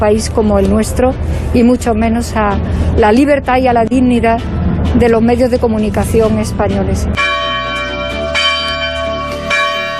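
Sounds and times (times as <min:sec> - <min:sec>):
speech: 0:00.0 - 0:07.3
church bells ringing: 0:04.1 - 0:09.9.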